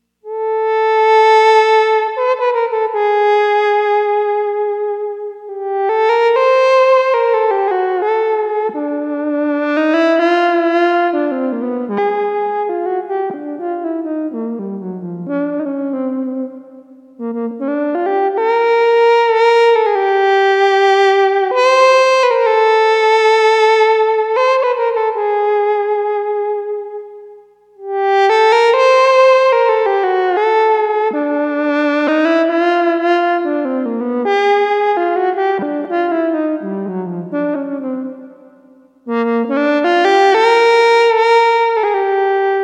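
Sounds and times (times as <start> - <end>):
synthesized alto sax: 0.2 - 42.6.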